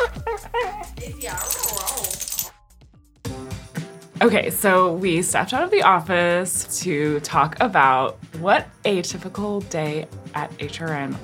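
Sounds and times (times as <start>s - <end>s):
dog yelp: 0.3s - 2.5s
speech: 4.2s - 11.2s.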